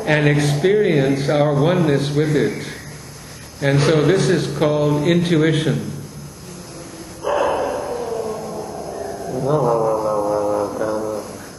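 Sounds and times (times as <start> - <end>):
faint hum: 0.0 - 11.5
speech: 0.1 - 2.8, 3.6 - 5.9, 9.4 - 10.0
dog barking in howl-like calls: 7.2 - 8.5.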